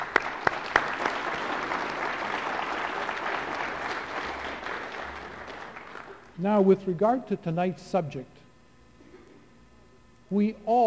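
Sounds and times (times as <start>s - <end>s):
sharp individual claps: 0.0s - 6.2s
audience applause: 0.0s - 6.3s
speech: 6.4s - 8.3s, 10.3s - 10.8s.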